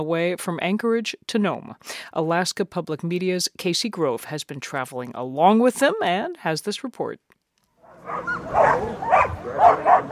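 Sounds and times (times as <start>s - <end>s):
speech: 0.0s - 7.3s, 8.1s - 10.0s
sled dogs barking and yipping at the Iditarod race in Alaska: 7.8s - 10.0s.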